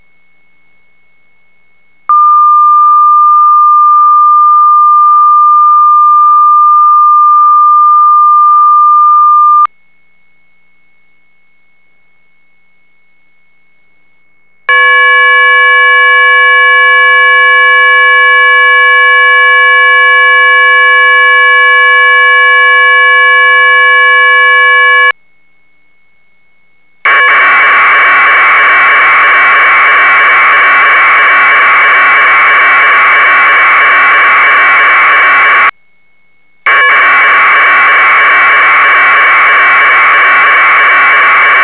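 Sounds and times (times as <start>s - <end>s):
1200-2200 flat audio packet radio data tones: 2.1s - 9.7s, 14.7s - 25.2s, 27.1s - 35.7s, 36.7s - 41.6s.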